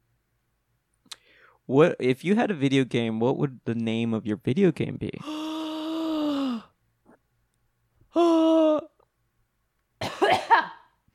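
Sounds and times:
speech: 1.6s - 5.4s
person groaning: 5.2s - 6.7s, 8.1s - 9.0s
harsh double-hack cough: 10.0s - 11.0s.

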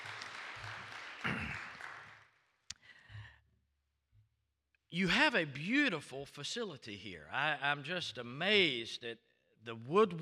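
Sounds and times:
audience applauding a bishop and his family with hand clapping: 0.0s - 2.9s
speech: 5.0s - 10.2s.

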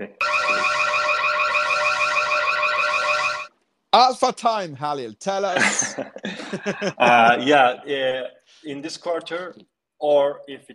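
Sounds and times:
shrill warbling electronic alarm blaring: 0.2s - 3.5s
speech: 4.0s - 10.7s
laughter: 5.5s - 7.5s.

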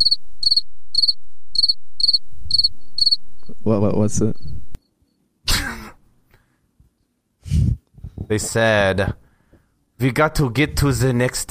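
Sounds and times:
cricket chirping: 0.0s - 5.2s
speech: 3.6s - 4.4s, 8.3s - 9.2s, 10.0s - 11.5s.

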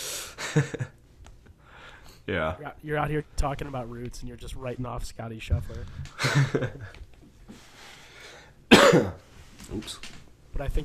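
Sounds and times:
speech: 0.5s - 1.0s, 2.3s - 7.6s, 8.9s - 10.8s
person coughing: 8.7s - 9.2s.

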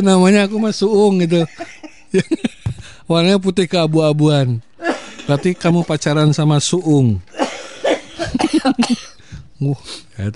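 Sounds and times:
speech: 0.0s - 2.5s, 3.1s - 4.7s, 5.3s - 7.6s, 8.3s - 10.3s
laughter: 1.1s - 2.8s, 7.6s - 9.1s
person coughing: 4.8s - 5.3s, 7.3s - 9.2s.

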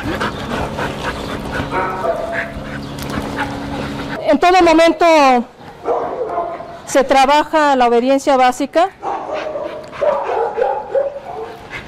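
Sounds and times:
dog barking and yipping during training: 1.2s - 4.2s, 5.8s - 6.7s, 9.0s - 11.6s
speech: 4.5s - 5.6s, 6.9s - 9.1s.

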